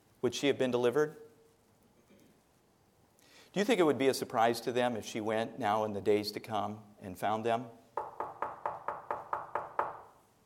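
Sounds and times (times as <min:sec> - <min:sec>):
speech: 0:00.2 - 0:01.2, 0:03.6 - 0:07.8
firm knocks on a wooden door: 0:08.0 - 0:10.1.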